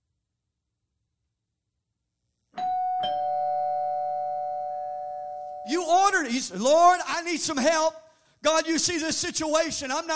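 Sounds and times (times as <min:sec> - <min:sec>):
two-tone doorbell chime: 0:02.6 - 0:05.7
speech: 0:05.7 - 0:10.1.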